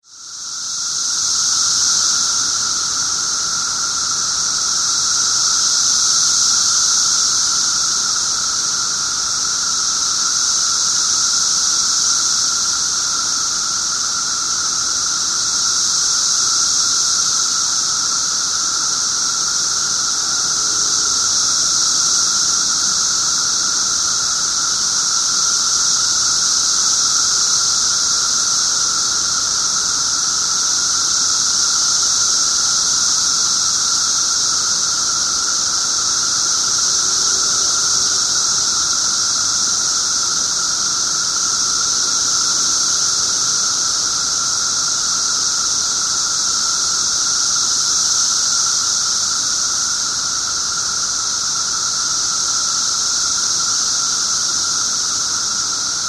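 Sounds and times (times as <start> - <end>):
17-year cicada Brood XIII in Glenview IL: 0.0 - 56.0.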